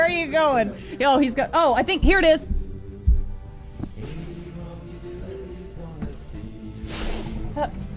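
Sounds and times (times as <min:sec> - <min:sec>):
speech: 0:00.2 - 0:02.6, 0:07.6 - 0:07.9
person blowing their nose: 0:06.8 - 0:07.5.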